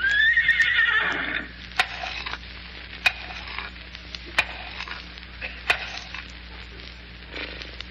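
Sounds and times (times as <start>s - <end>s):
horse whinnying: 0.0s - 1.5s
steady hiss: 0.0s - 7.9s.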